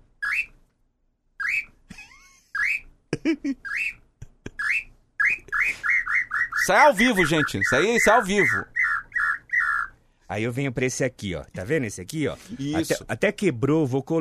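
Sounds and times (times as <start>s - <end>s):
bird-call whistle imitating birdsong: 0.2s - 0.6s, 1.4s - 1.8s, 3.7s - 4.0s, 4.6s - 9.9s
person laughing: 1.9s - 5.9s
speech: 3.2s - 4.0s, 6.7s - 8.7s, 10.3s - 14.1s
low voice: 12.5s - 13.1s.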